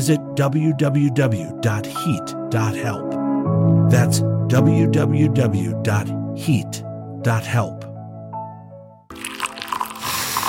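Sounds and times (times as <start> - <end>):
speech: 0.0 - 7.9
coffee pouring into a cup: 9.1 - 10.4.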